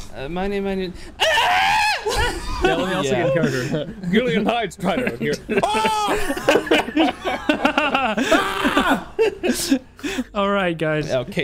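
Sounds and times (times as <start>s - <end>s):
speech: 0.2s - 11.4s
person screaming: 1.2s - 3.4s, 5.6s - 6.4s, 8.2s - 9.2s
laughter: 2.0s - 10.3s.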